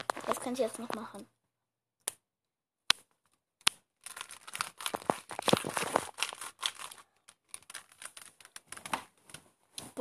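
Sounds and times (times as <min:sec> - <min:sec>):
chip bag rustled: 0:00.0 - 0:00.5, 0:04.0 - 0:09.0
speech: 0:00.4 - 0:01.4
chips crumbled in front of a microphone: 0:04.0 - 0:08.9.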